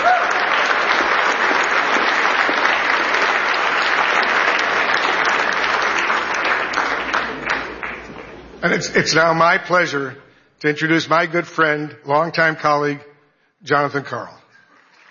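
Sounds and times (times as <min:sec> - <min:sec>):
large audience applauding: 0:00.0 - 0:08.8
speech: 0:08.7 - 0:14.4.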